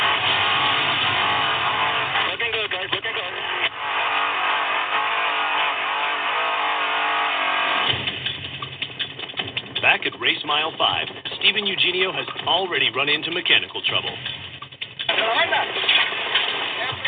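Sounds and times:
trophy truck engines roaring accelerating into open desert during an off-road race: 0.0 - 17.0
speech: 10.7 - 14.4, 15.2 - 16.1.

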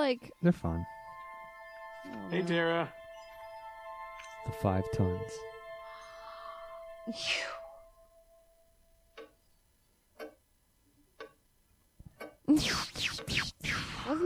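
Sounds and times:
speech: 0.0 - 1.0, 2.0 - 3.0, 4.4 - 5.5, 7.1 - 7.6, 12.5 - 14.2
clock ticking loudly: 0.0 - 13.3
breathy sigh: 5.9 - 7.8.

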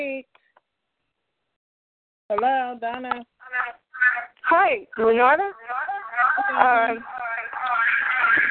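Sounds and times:
speech: 2.3 - 7.2
voice over a telephone line with echo: 3.4 - 8.4.

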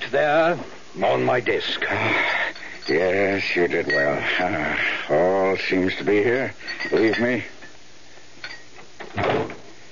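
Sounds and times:
speech: 0.1 - 7.6
door closing with a solid thud: 9.0 - 9.7.

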